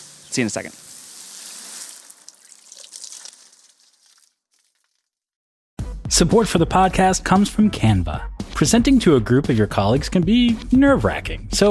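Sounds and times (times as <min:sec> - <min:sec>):
water running from watering the grass: 0:00.0 - 0:04.8
speech: 0:00.4 - 0:00.9, 0:06.1 - 0:11.7.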